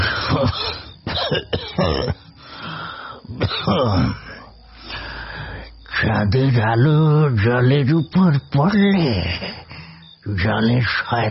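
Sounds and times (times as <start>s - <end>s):
old man coughing harshly: 0.0s - 2.3s, 3.4s - 4.2s
old man clearing his throat: 0.2s - 2.2s, 3.4s - 4.2s
speech: 1.3s - 2.2s, 6.0s - 11.2s
old man's wheezy breaths: 2.2s - 3.3s, 4.2s - 5.8s, 9.6s - 10.2s.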